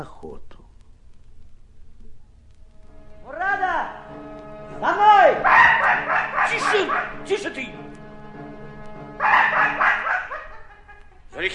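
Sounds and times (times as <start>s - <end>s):
speech: 0.0s - 0.5s, 11.4s - 11.5s
dog barking during a hunt: 5.4s - 7.3s, 9.2s - 10.6s
laughter: 9.3s - 11.5s.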